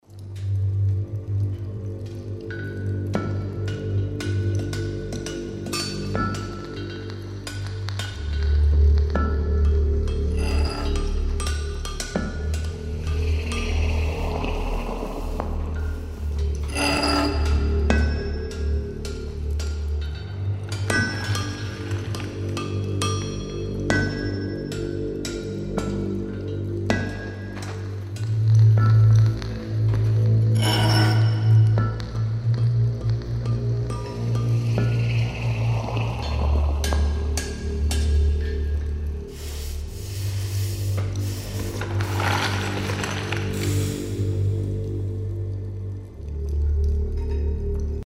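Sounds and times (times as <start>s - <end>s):
background ambience: 0.0s - 48.0s
drone: 8.2s - 24.5s, 30.0s - 45.4s.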